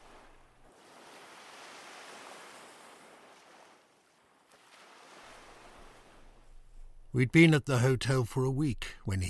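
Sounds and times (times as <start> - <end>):
sea waves washing onto a sandy shore: 0.0 - 7.1
faint low rumble: 6.3 - 9.2
speech: 7.1 - 9.2.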